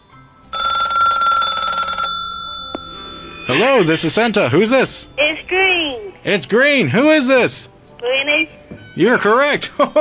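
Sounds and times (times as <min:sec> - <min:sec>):
telephone ringing with electronic tones: 0:00.5 - 0:03.8
speech: 0:03.5 - 0:09.9.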